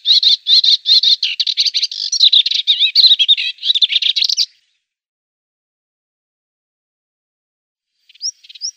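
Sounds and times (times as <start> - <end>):
melodious warbler chattering: 0.0 - 4.6.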